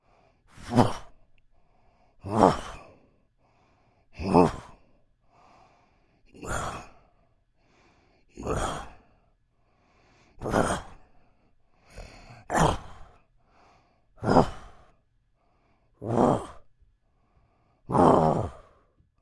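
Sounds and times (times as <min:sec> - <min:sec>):
human creature moan groaning voice: 0:00.6 - 0:01.2, 0:02.2 - 0:02.9, 0:04.2 - 0:04.8, 0:06.4 - 0:07.0, 0:08.4 - 0:09.0, 0:10.4 - 0:11.0, 0:11.9 - 0:13.2, 0:14.2 - 0:14.8, 0:16.0 - 0:16.7, 0:17.9 - 0:18.8.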